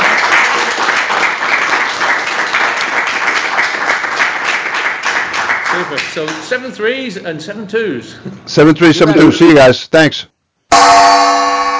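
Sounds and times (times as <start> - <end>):
crowd applauding: 0.0 - 6.6
speech: 6.1 - 11.4.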